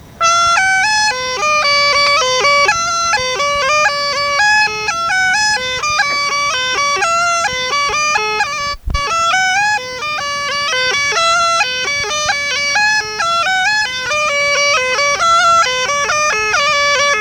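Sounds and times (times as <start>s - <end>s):
small gajda bagpipe melody in a minor key: 0.0s - 17.2s.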